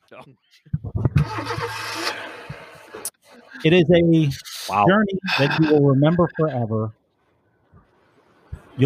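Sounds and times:
speech: 0.1 - 2.6, 3.6 - 7.0
Ford Mustang engine starting and revving: 1.2 - 3.1.

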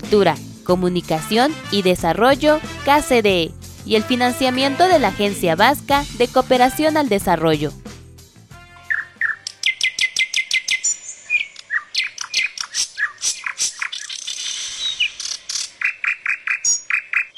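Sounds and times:
speech: 0.0 - 7.8
mockingbird singing: 8.8 - 17.3.

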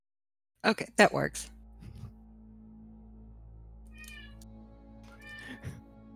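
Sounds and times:
speech: 0.6 - 1.6
low steady hum: 0.7 - 6.1
cat meowing: 4.0 - 4.4, 5.1 - 5.8.

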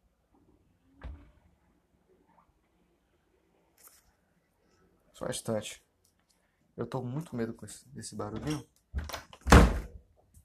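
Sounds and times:
door closing with a solid thud: 1.0 - 1.4, 8.4 - 10.0
speech: 5.2 - 5.9, 6.8 - 9.2.

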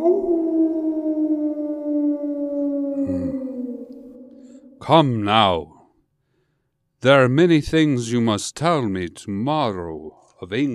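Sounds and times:
wolves howling: 0.0 - 4.8
speech: 4.8 - 5.7, 7.0 - 10.7.

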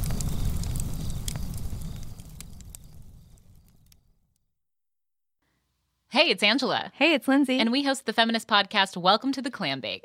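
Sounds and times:
low rumbling roar of flames: 0.0 - 4.0
campfire crackling and popping: 0.0 - 4.3
speech: 6.1 - 10.0.

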